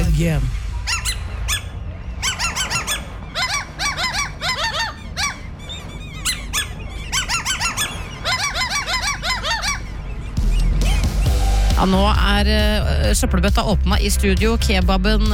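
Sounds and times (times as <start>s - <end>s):
speech: 0.2s - 0.6s, 11.8s - 15.3s
seagulls squawking: 0.5s - 11.4s.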